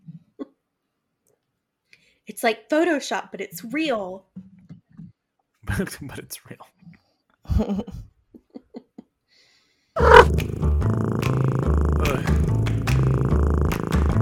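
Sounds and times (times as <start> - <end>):
speech: 2.3 - 4.4, 5.7 - 6.8, 7.6 - 8.1
cat purring: 10.0 - 14.2.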